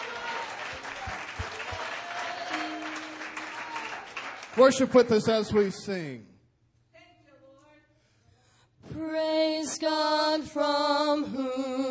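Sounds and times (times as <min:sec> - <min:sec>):
faint voices and cheers: 0:00.0 - 0:04.2
congregation applauding in a large room: 0:00.0 - 0:05.7
speech: 0:04.6 - 0:06.3, 0:09.8 - 0:11.8.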